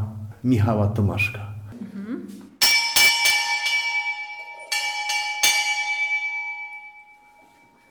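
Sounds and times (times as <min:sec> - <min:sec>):
speech: 0:00.4 - 0:01.6
small monastery bell rung to summon friars: 0:02.6 - 0:07.8.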